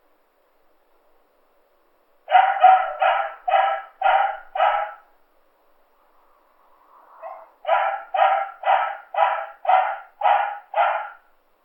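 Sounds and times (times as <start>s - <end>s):
dog barking with loud harsh barks: 2.3s - 5.1s, 7.2s - 11.3s.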